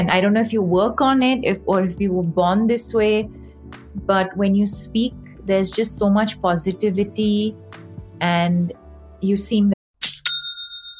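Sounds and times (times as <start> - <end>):
speech: 0.0 - 3.4, 4.0 - 9.7
online store sale notification two-stroke metallic chime: 10.2 - 10.9.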